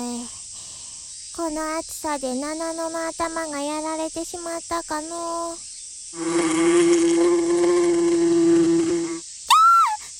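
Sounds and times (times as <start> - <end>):
speech: 1.4 - 7.7
bee buzzing in flight: 6.2 - 9.2
short high whistle-like chirp bending downward: 9.5 - 10.1.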